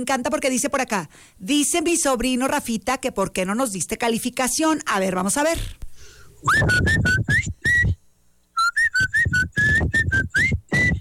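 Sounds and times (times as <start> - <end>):
speech: 0.0 - 5.8, 6.4 - 7.6
breathy air noise: 5.7 - 8.0
person whistling a quick chirpy tune: 6.4 - 8.0, 8.6 - 11.0.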